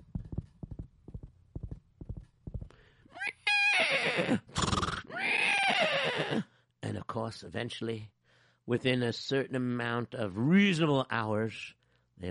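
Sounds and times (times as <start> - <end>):
horses' hooves clip-clopping in a gallop: 0.0 - 2.8
horses whinnying and neighing: 3.2 - 6.5
speech: 7.2 - 12.2.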